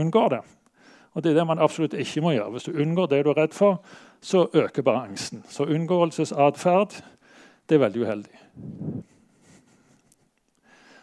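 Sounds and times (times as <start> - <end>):
speech: 0.0 - 0.6, 1.2 - 9.2
heavy forceful breathing: 3.8 - 4.2, 7.0 - 7.7, 8.3 - 11.0.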